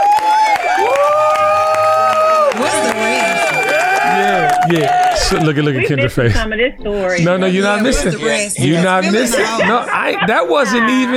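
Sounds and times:
audience whistles and whoops: 0.0 - 5.2
audience cheering: 0.0 - 5.8
scattered audience clapping: 0.0 - 5.9
speech: 4.7 - 11.1.

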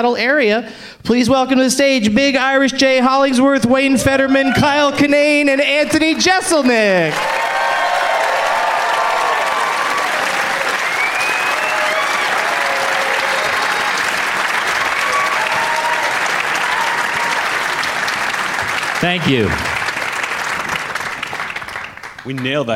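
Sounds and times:
speech: 0.0 - 7.6, 19.0 - 19.7, 22.3 - 22.7
audience whoops and cheers: 4.0 - 4.9, 7.1 - 14.2, 14.8 - 18.0
large audience applause: 5.7 - 22.7.

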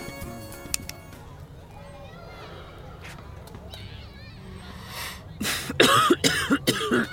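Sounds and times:
person coughing after smoking a cigarette: 5.6 - 7.1.

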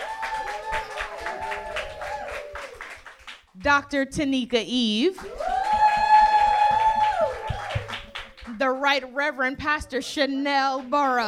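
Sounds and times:
people whooping and cheering: 0.0 - 3.0, 5.2 - 8.4
audience applauding panelists at an evening panel discussion: 0.0 - 3.5, 5.2 - 8.6
speech: 3.6 - 5.5, 8.6 - 11.2.

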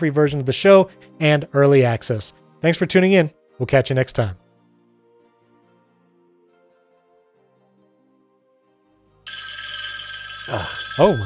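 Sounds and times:
speech: 0.0 - 4.4, 10.5 - 11.2
1960s-style telephone bell ringing: 9.3 - 11.2.

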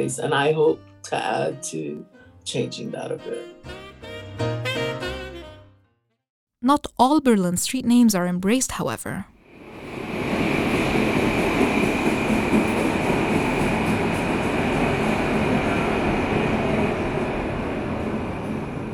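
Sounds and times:
speech: 0.0 - 3.8, 6.6 - 9.3
subway train roaring at a Berlin station: 9.4 - 18.9.

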